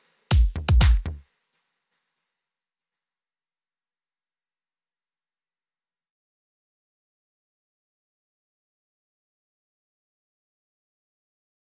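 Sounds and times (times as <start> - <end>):
deep tech electronic music: 0.3 - 1.2.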